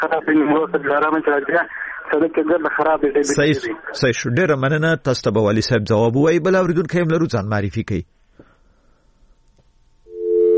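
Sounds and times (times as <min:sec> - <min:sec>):
speech: 0:00.0 - 0:08.5
telephone busy tone after a caller's line cuts off on a radio call-in: 0:10.1 - 0:10.5.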